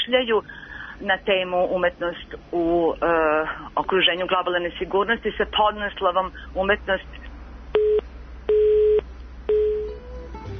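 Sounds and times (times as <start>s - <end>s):
speech: 0.1s - 7.3s
telephone busy signal beeps after a dropped phone call: 7.8s - 10.0s.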